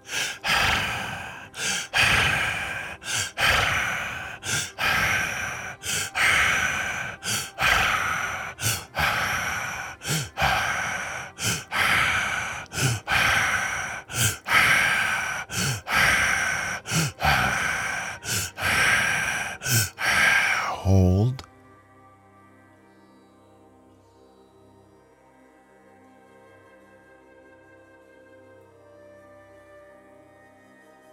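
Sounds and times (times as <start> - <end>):
rhythmic breathing in a guided breathing exercise: 0.0 - 21.5.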